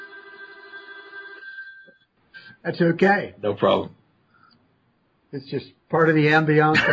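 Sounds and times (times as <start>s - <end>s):
old telephone bell ringing: 0.0s - 2.1s
speech: 2.6s - 4.0s, 5.3s - 6.9s.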